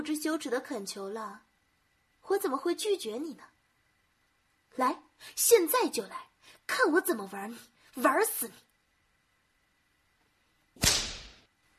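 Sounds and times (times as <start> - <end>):
speech: 0.0 - 1.5, 2.3 - 3.5, 4.8 - 8.6
whip crack: 10.8 - 11.5.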